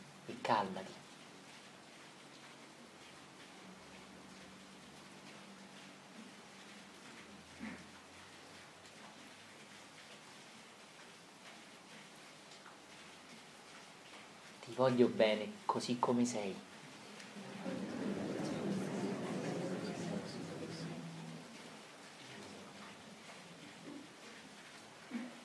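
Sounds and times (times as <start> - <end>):
steady rain pattering on a surface: 0.0 - 25.4
speech: 0.3 - 1.0, 14.8 - 16.7
laughter: 17.2 - 21.7.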